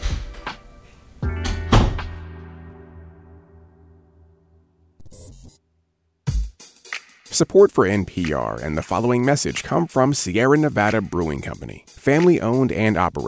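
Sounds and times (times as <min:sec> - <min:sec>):
door shutting with solid thuds: 0:01.4 - 0:02.2
speech: 0:07.4 - 0:13.2.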